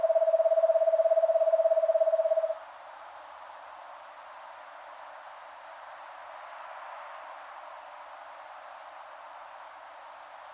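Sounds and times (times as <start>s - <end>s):
Eastern screech owl Megascops asio trill: 0.0s - 2.6s.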